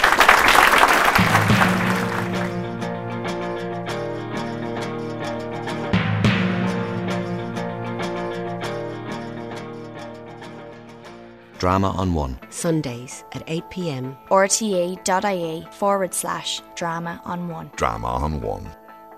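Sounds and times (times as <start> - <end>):
audience applause for play readers: 0.0 - 2.9
sustained instrumental music: 1.1 - 19.1
speech: 11.6 - 18.8.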